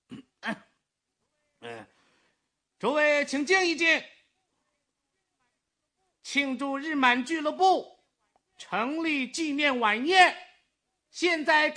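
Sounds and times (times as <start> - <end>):
man clearing his throat before addressing a banquet hall: 0.0 - 0.8
speech: 2.8 - 4.2, 6.3 - 7.9, 8.6 - 10.4, 11.1 - 11.7.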